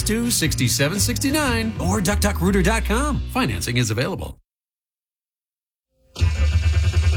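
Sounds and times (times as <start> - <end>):
speech: 0.1 - 4.4
car engine cranking but failing to start: 6.2 - 7.1.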